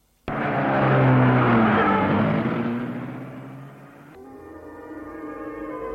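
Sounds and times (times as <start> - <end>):
car engine starting and driving off: 0.3 - 4.2.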